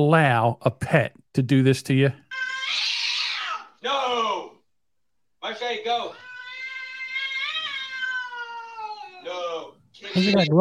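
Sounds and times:
speech: 0.0 - 2.9, 5.4 - 6.2, 10.0 - 10.5
cat meowing: 2.3 - 3.7, 6.1 - 9.4, 10.0 - 10.5.

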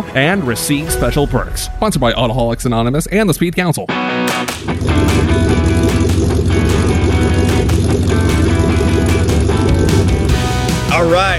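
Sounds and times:
speech: 0.2 - 5.8, 11.0 - 11.3
Porsche 928 V8 engine idling with choppy exhaust burble: 4.3 - 11.0.

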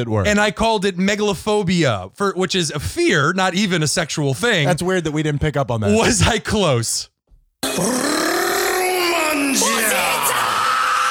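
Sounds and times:
speech: 0.0 - 7.1, 7.7 - 8.2, 9.4 - 10.3
person letting out a guttural battle cry yell: 7.6 - 11.0.

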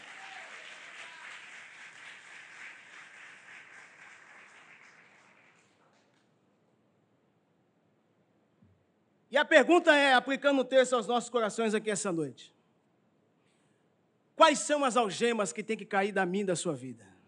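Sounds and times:
audience applauding: 0.0 - 6.2
speech: 9.3 - 12.6, 14.4 - 17.1.

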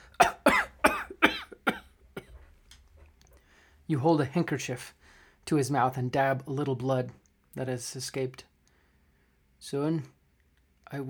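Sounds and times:
dry coughing fit: 0.0 - 2.4
speech: 3.9 - 8.5, 9.6 - 10.2.

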